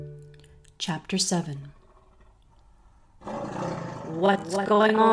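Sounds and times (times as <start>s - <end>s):
speech: 0.8s - 1.8s, 4.2s - 5.1s
giant saber-toothed tiger roar: 1.6s - 2.6s, 3.2s - 5.0s.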